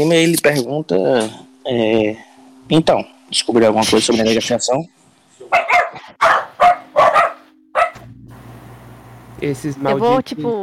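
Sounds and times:
speech: 0.0s - 6.4s, 9.4s - 10.6s
dogs barking inside a hospital: 5.5s - 8.0s.

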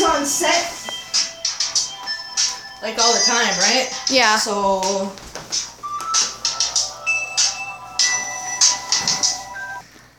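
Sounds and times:
ringtone from a small cheap mobile phone: 0.4s - 4.4s, 5.8s - 9.8s
speech: 2.8s - 5.6s.

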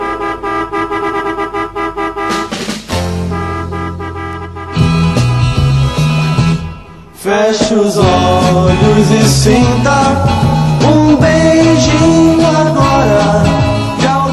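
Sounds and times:
car horn honking: 0.0s - 7.2s
upbeat music: 0.0s - 14.3s
speech: 7.4s - 13.4s.

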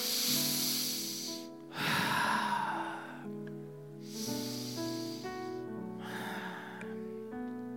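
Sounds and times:
soft sustained musical drone: 0.0s - 3.2s, 3.9s - 6.9s
slow deep breathing: 0.0s - 3.4s, 4.0s - 7.1s.

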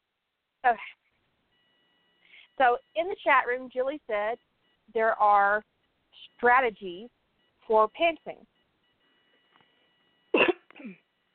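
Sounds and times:
speech: 0.6s - 1.0s, 2.6s - 8.5s
person coughing: 10.3s - 11.0s.

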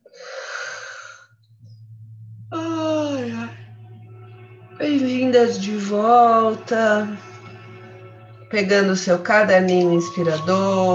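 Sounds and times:
long airy breath drawn in: 0.1s - 1.3s
low steady hum: 0.8s - 10.9s
speech: 4.8s - 7.3s, 8.5s - 10.9s.

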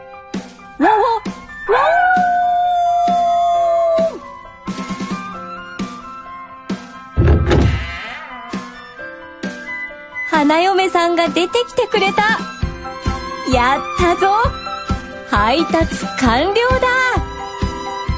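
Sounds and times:
music: 0.0s - 18.1s
dog howling loudly: 1.7s - 4.4s
scattered knocking sounds: 7.2s - 7.9s
heavy thump: 7.2s - 8.0s
speech: 10.5s - 12.5s, 13.5s - 14.6s, 15.3s - 17.2s.

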